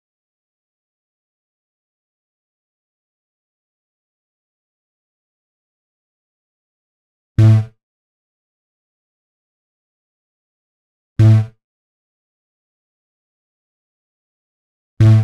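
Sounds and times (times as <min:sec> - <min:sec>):
B sharp minor bass at 126 BPM: 0:07.4 - 0:07.7, 0:11.2 - 0:11.5, 0:15.0 - 0:15.2.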